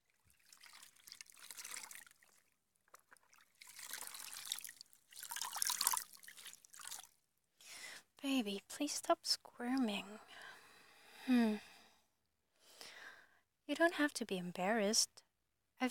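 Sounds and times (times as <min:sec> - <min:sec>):
water trickling and splashing as a mother washes a young boy: 0:00.0 - 0:07.2
speech: 0:08.2 - 0:10.4, 0:11.2 - 0:11.7, 0:13.7 - 0:15.2.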